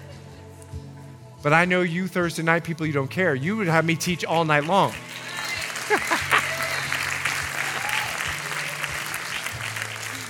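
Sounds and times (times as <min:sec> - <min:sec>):
speech: 0:01.4 - 0:05.2
room full of people clapping: 0:04.2 - 0:10.2
laughter: 0:05.0 - 0:10.2.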